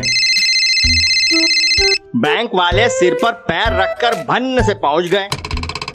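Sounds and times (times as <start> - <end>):
phone ringing with a bright electronic tone: 0.0 - 2.0
speech: 1.3 - 5.4.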